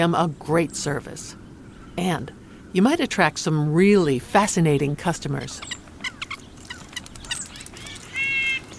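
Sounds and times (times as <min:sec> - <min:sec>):
speech: 0:00.0 - 0:01.4, 0:02.0 - 0:05.8
birds chirping and calling outdoors: 0:00.0 - 0:08.7
buzzy trilling bird call: 0:05.6 - 0:08.7.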